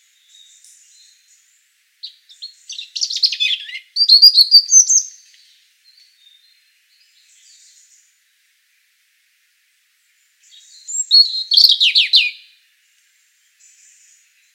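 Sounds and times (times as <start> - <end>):
European robin Erithacus rubecula song: 0.0 - 8.2, 10.4 - 12.6.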